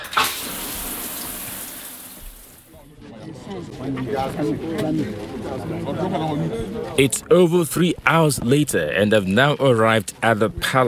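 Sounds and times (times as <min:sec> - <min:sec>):
shower water running: 0:00.0 - 0:02.7
speech: 0:03.5 - 0:10.8.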